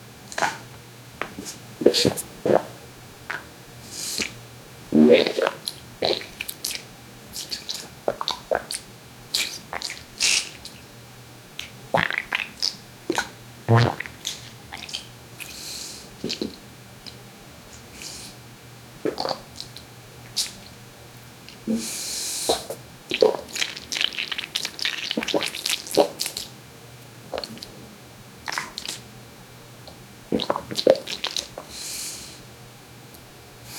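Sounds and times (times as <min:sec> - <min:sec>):
wet sticky bubbly farts: 0:00.4 - 0:00.7, 0:01.4 - 0:03.4, 0:04.2 - 0:06.8, 0:07.4 - 0:08.8, 0:11.9 - 0:15.0, 0:16.2 - 0:16.6, 0:19.1 - 0:19.8, 0:22.5 - 0:26.5, 0:28.5 - 0:29.0, 0:30.3 - 0:31.6.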